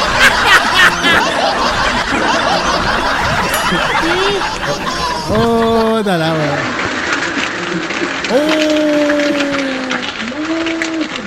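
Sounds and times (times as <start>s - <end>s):
laughter: 0.0s - 7.0s, 7.7s - 10.3s
speech: 5.3s - 6.8s, 7.7s - 9.4s
heavy rain: 6.7s - 11.2s.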